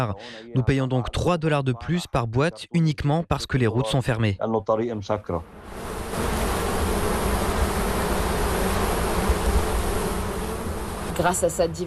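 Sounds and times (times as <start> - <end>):
speech: 0.0 - 6.4, 11.2 - 11.8
wild bees buzzing: 5.4 - 11.8.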